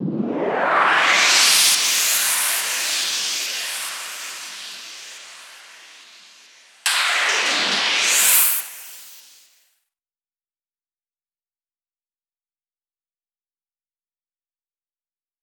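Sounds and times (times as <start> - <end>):
noise lift sound effect: 0.0 - 9.6.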